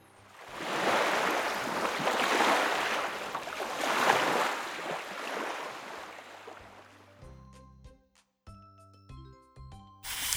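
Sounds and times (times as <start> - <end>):
river water flowing: 0.4 - 6.8.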